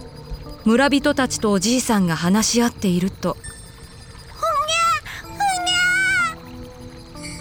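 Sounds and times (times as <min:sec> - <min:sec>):
faint steady hum: 0:00.0 - 0:07.4
speech: 0:00.6 - 0:03.5
baby crying: 0:04.4 - 0:06.4.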